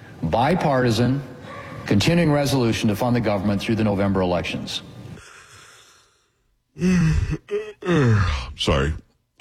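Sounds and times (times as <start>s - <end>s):
speech: 0.3s - 1.3s, 1.9s - 5.0s, 6.8s - 9.3s
person yawning into the microphone: 6.8s - 8.6s.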